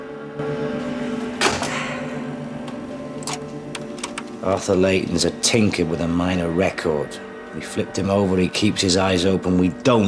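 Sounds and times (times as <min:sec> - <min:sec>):
steady low hum: 0:00.0 - 0:09.9
videotape inserted into a VCR: 0:01.4 - 0:01.8, 0:02.6 - 0:04.4
speech: 0:04.4 - 0:10.0.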